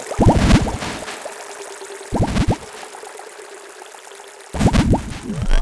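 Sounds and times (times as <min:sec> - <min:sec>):
synthetic water bubbles and drips: 0:00.1 - 0:01.3, 0:02.1 - 0:02.9, 0:04.5 - 0:05.6
louder synthetic water splashing rushes: 0:00.2 - 0:01.3, 0:04.5 - 0:05.6.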